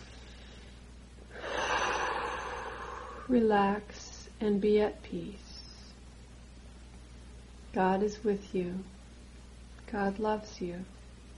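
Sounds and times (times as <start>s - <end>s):
deep breath drawn in during a guided prayer meditation: 0.0s - 3.4s
speech: 3.3s - 5.4s, 7.7s - 9.0s, 9.9s - 11.0s.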